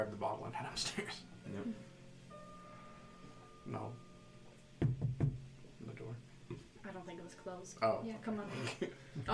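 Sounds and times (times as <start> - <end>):
speech: 0.0 - 1.9, 3.6 - 4.1, 5.8 - 9.3
knocking on a wall by an open door: 4.8 - 5.5.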